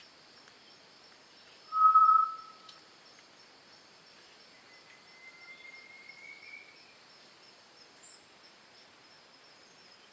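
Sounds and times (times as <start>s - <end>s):
Solitary tinamou low steady whistle: 1.7s - 2.7s, 4.7s - 6.8s.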